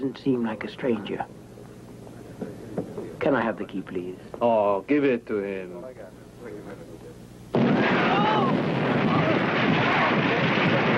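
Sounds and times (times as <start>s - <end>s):
speech: 0.0s - 1.4s, 3.2s - 6.9s
loud explosion on board a ship: 7.5s - 10.9s.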